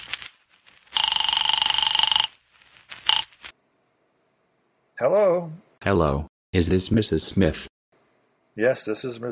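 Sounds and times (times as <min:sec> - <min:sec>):
steady electronic telephone ring: 0:01.0 - 0:02.3, 0:03.0 - 0:03.3
speech: 0:05.0 - 0:07.7, 0:08.6 - 0:09.3.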